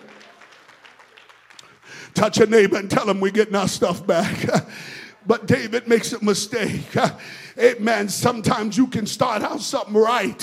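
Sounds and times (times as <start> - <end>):
audience clapping at a church service: 0.0 - 2.5
speech: 2.1 - 10.4
laughter: 4.1 - 7.2.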